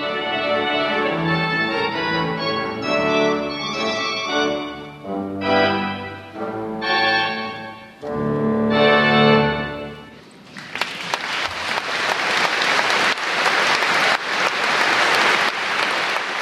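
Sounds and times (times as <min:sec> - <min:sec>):
sustained final musical chord ringing: 0:00.0 - 0:10.1
large audience applause in a full church: 0:10.4 - 0:16.4.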